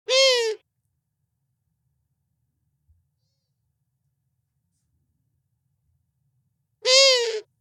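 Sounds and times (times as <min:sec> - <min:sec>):
sharp harmonic calls of a female owl: 0:00.1 - 0:00.6, 0:06.8 - 0:07.5.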